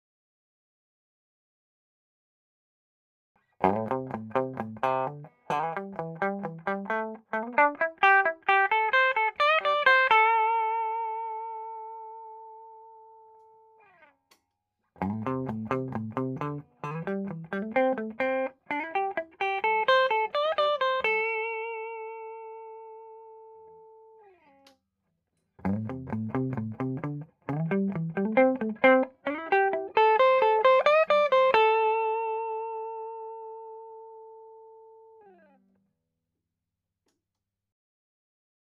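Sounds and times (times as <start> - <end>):
ES335 electric guitar with clean tone: 3.6 - 14.2, 15.0 - 24.7, 25.6 - 35.7.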